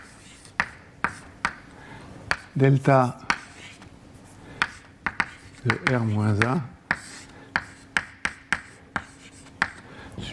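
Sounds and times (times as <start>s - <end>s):
faint scratchy writing strokes on a board: 0.0s - 1.4s, 2.3s - 9.8s
writing taps on a board during a lecture: 0.0s - 1.7s, 2.3s - 2.6s, 3.2s - 3.9s, 4.6s - 9.9s
speech: 2.6s - 3.2s, 5.6s - 6.7s.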